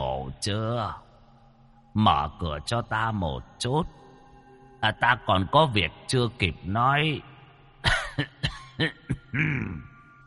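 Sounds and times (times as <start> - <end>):
speech: 0.4 - 1.1, 2.0 - 4.0, 4.8 - 9.9
old man coughing violently outside a door: 7.8 - 9.9.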